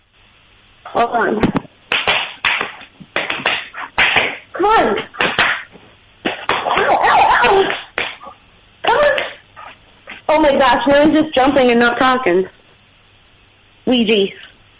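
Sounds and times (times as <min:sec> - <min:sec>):
speech: 0:01.0 - 0:01.6, 0:10.4 - 0:12.6, 0:13.9 - 0:14.5
person slapping their own body with a hand: 0:01.4 - 0:08.3, 0:09.1 - 0:09.4.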